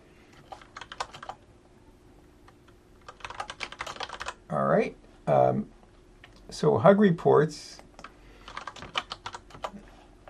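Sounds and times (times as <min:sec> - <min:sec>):
typing on a computer keyboard: 0:00.4 - 0:01.4, 0:03.0 - 0:04.4, 0:08.0 - 0:09.8
speech: 0:04.8 - 0:05.8, 0:06.5 - 0:07.8.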